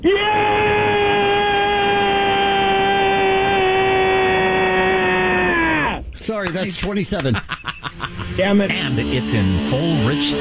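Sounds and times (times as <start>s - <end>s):
radio caller screaming: 0.0s - 6.1s
laughter: 6.2s - 10.2s
speech: 6.6s - 10.3s.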